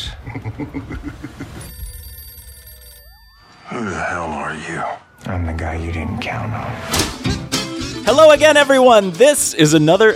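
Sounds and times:
speech: 0.3s - 1.9s, 3.7s - 7.3s, 8.0s - 10.1s
telephone ringing: 1.6s - 4.2s.

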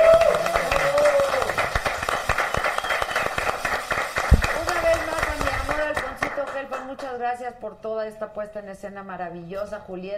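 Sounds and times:
audience applauding: 0.0s - 6.9s
whistle-like tone or voice: 2.7s - 3.4s
speech: 7.6s - 10.1s.

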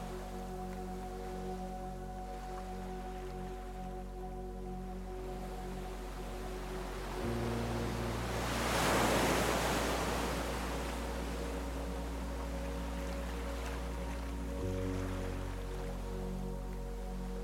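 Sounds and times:
soft slow relaxing music of long sustained low tones: 0.0s - 17.4s
waves washing in: 5.4s - 15.8s.

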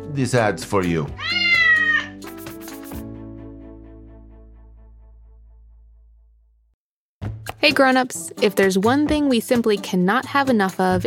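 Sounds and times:
speech: 0.0s - 1.4s, 7.6s - 11.0s
soft music: 0.0s - 4.7s, 7.5s - 11.0s
cat meowing: 1.1s - 2.2s.

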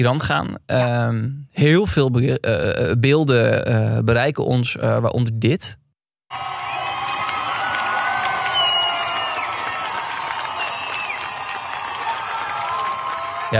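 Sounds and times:
speech: 0.0s - 6.7s
large crowd of women cheering and shouting at a protest in Iran: 6.3s - 13.5s.

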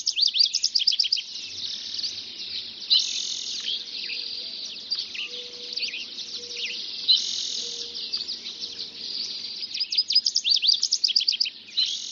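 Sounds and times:
dense dawn chorus of many birds singing: 0.0s - 12.1s.

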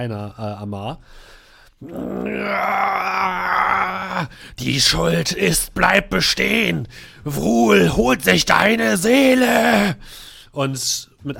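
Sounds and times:
speech: 0.0s - 11.3s
human voice imitating a creature's dying scream: 1.8s - 4.4s, 9.3s - 10.0s.

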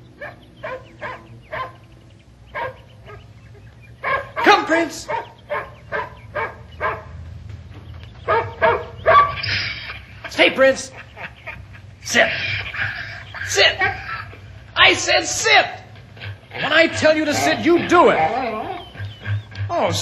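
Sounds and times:
dog barking: 0.2s - 1.8s, 2.5s - 3.3s, 4.0s - 7.2s, 8.2s - 9.5s
man calling out to a dog: 4.3s - 5.2s, 12.0s - 12.6s, 13.4s - 14.0s, 14.8s - 15.9s, 16.6s - 18.8s
speech: 4.7s - 5.2s, 10.4s - 11.0s, 12.1s - 12.5s, 13.5s - 14.0s, 14.9s - 15.8s, 16.6s - 18.4s, 19.8s - 20.0s
laughter: 9.4s - 15.4s, 16.1s - 20.0s.

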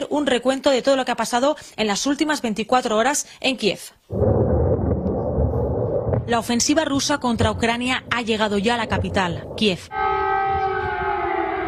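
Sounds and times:
speech: 0.0s - 4.3s, 6.3s - 10.0s
low rumbling background: 4.1s - 9.9s
air-raid siren wailing: 9.9s - 11.6s.

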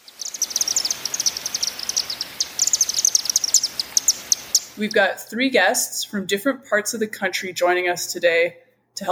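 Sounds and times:
Chimney swifts chattering: 0.0s - 5.1s
speech: 4.8s - 9.0s.

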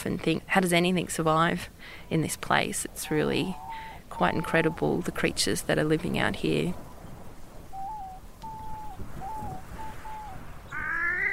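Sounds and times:
speech: 0.0s - 6.8s
wood duck calling outdoors: 10.7s - 11.3s.

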